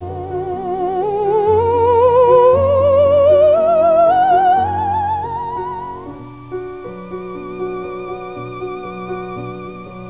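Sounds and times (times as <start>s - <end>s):
theremin: 0.0s - 6.2s.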